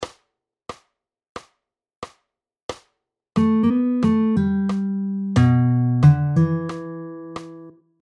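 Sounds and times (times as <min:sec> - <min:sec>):
pentatonic riffs: 0:03.4 - 0:07.7.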